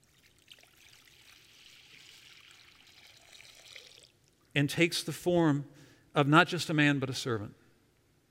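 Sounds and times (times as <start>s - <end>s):
water pouring into a basin: 0.0s - 4.5s
speech: 4.6s - 7.6s.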